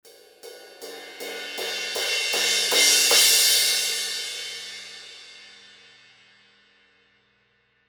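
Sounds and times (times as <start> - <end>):
thin crash cymbal crescendo hits: 0.1 - 5.8.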